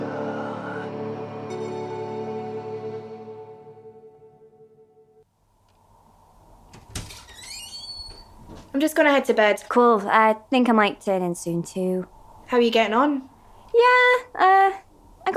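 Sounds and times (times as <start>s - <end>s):
heavy fire door creaking: 6.7s - 8.8s
squeaky scrapes of a fire door: 7.2s - 8.4s
speech: 8.8s - 15.3s.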